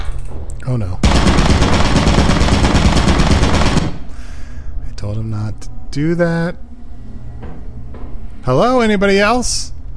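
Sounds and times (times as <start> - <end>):
speech: 0.7 - 1.6, 5.0 - 6.6, 8.4 - 9.8
video game turret gunfire: 1.0 - 4.2.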